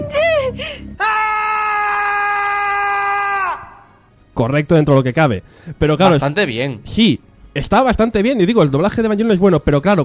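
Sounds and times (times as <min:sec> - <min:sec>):
scream of terror from a Spanish-dubbed anime: 0:01.0 - 0:04.0
speech: 0:04.4 - 0:10.0.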